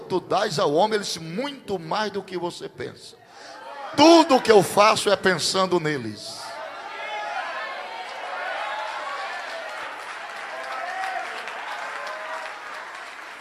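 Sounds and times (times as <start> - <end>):
speech: 0.1 - 6.4
scattered crowd voices and cheers: 3.4 - 4.6, 6.4 - 13.3
audience applauding: 7.3 - 13.3.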